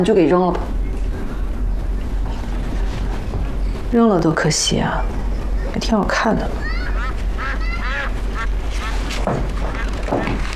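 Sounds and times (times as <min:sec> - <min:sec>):
speech: 0:00.0 - 0:00.8, 0:03.9 - 0:05.2, 0:05.8 - 0:06.7
low rumble: 0:00.0 - 0:10.5
ducks quacking: 0:06.6 - 0:10.1.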